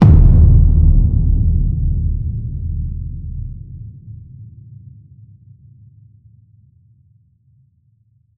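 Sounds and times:
low designed cinematic hit: 0.0 - 4.3.

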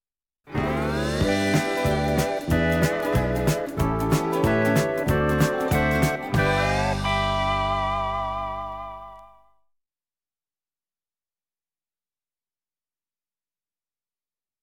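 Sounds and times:
Hawaiian jingle music: 0.5 - 9.2.

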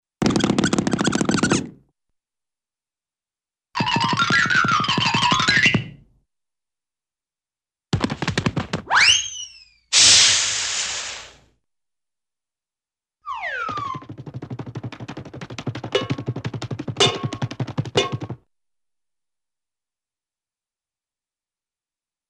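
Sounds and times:
rapid cartoon footsteps with small squeaks: 0.2 - 1.8, 3.8 - 6.0, 7.9 - 9.8, 13.3 - 18.4.

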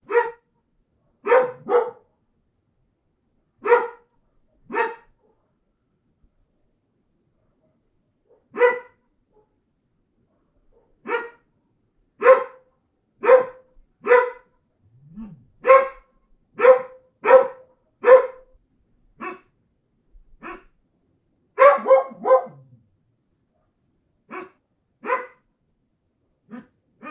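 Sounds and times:
mixed breed dog: 0.1 - 0.4, 1.0 - 2.1, 3.6 - 4.1, 4.7 - 5.6, 7.4 - 9.6, 10.3 - 11.4, 12.2 - 12.6, 13.2 - 14.5, 15.2 - 18.5, 19.2 - 19.5, 20.4 - 20.7, 21.6 - 22.8, 23.5 - 25.4, 26.5 - 27.0.

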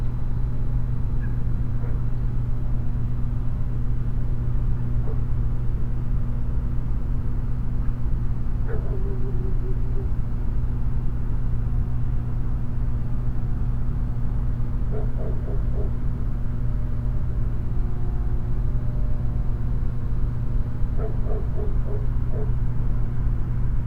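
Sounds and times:
steady low electric hum: 0.0 - 23.8
dog barking at night in a suburb: 5.0 - 5.3, 8.6 - 10.1, 14.9 - 16.0, 21.0 - 22.6.

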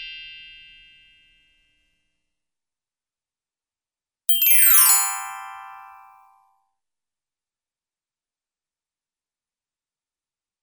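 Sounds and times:
descending and ascending cartoon glockenspiel glissando: 4.3 - 6.3.

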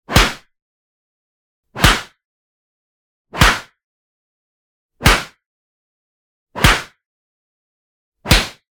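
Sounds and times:
soft punch: 1.8 - 2.1, 3.4 - 3.7, 5.0 - 5.4, 6.6 - 7.0, 8.3 - 8.6.

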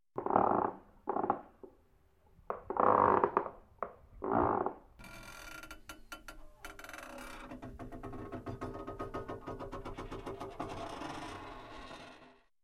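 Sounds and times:
scary creaks: 2.5 - 12.5.

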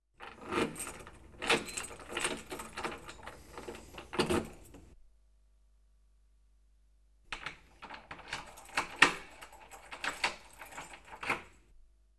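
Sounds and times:
key going into lock: 0.2 - 4.9, 7.4 - 11.6.

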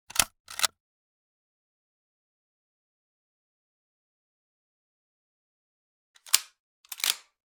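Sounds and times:
20 gauge shotgun action working: 0.1 - 0.7.

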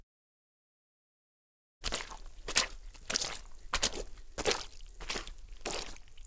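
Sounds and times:
foley footsteps in mud: 2.0 - 6.0.

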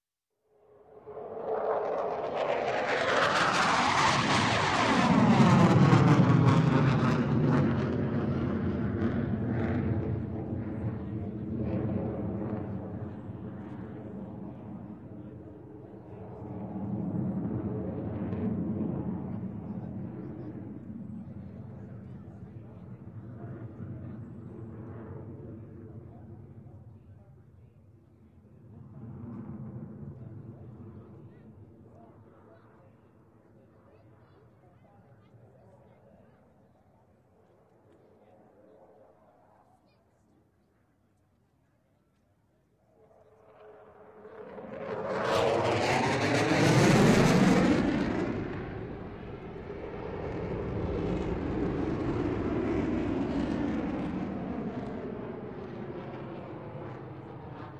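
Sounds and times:
F-16 fighter jet passing: 0.6 - 27.1, 28.4 - 32.8, 42.9 - 57.7.

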